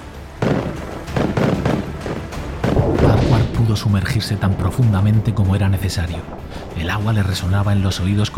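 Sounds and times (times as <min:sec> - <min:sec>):
firing-squad rifle volley: 0:00.4 - 0:03.8
speech: 0:03.7 - 0:08.3.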